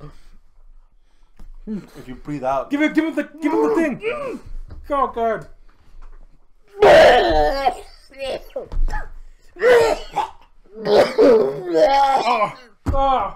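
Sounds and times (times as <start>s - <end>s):
speech: 0.0s - 0.3s, 1.6s - 5.6s, 6.8s - 13.3s
person retching while trying to vomit: 6.8s - 12.9s.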